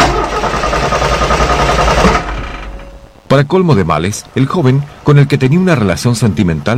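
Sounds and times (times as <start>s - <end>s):
car engine cranking roughly without catching: 0.0s - 3.2s
speech: 3.3s - 6.7s.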